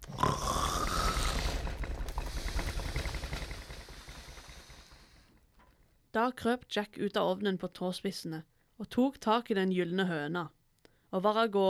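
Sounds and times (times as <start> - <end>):
deep rumbling loud snoring of a giant: 0.0 - 5.4
speech: 6.2 - 11.6.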